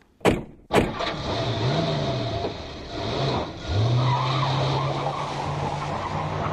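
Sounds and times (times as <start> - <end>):
car door slams: 0.2 - 1.0
car engine revving as the vehicle tears off: 0.9 - 6.5
tires screeching: 0.9 - 6.5.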